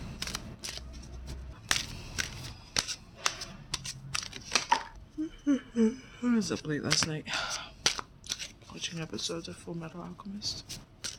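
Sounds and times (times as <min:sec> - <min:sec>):
deck of tarot cards shuffling: 0:00.0 - 0:04.9, 0:06.5 - 0:07.2, 0:07.8 - 0:09.3, 0:10.0 - 0:11.1
speech: 0:05.8 - 0:07.6, 0:08.8 - 0:10.8.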